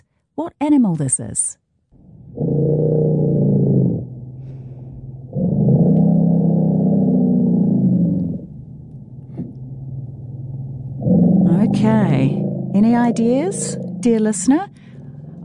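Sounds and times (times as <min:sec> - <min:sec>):
speech: 0:00.4 - 0:01.6, 0:11.8 - 0:14.8
deep throaty elephant rumbling: 0:02.0 - 0:15.4.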